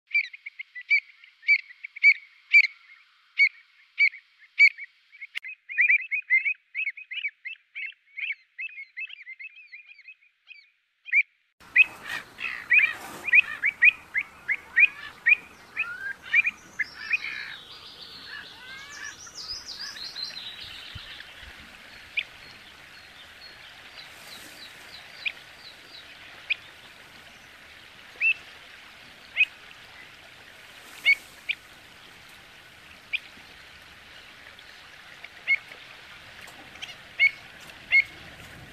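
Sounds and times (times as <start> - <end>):
Pied avocet calling: 0.1 - 26.7, 36.7 - 38.3.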